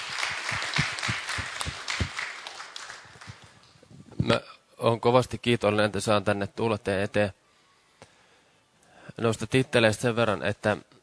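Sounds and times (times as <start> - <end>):
audience applauding in a room: 0.0 - 3.7
speech: 4.2 - 7.4, 9.2 - 10.9.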